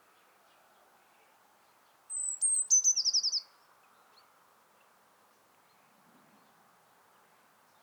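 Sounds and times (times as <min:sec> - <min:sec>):
low steady background noise: 0:00.0 - 0:07.8
Eurasian blue tit Cyanistes caeruleus song with high notes and trill: 0:02.1 - 0:03.5.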